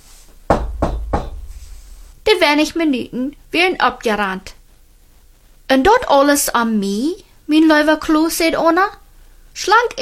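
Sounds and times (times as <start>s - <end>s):
teacher knocking on a door: 0.5s - 1.9s
speech: 2.3s - 4.6s, 5.7s - 9.0s, 9.6s - 10.0s.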